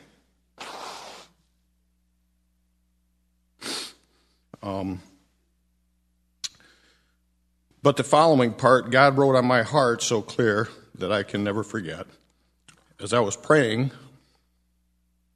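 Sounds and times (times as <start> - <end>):
person blowing nose: 0.6 - 1.4, 3.6 - 4.1
person sniffing: 0.6 - 1.5, 3.6 - 4.5
speech: 4.6 - 5.1, 7.8 - 12.2, 13.0 - 14.1.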